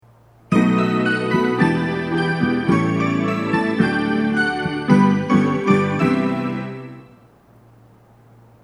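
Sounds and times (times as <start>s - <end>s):
train departure signal melody on platform 2: 0.5s - 7.4s.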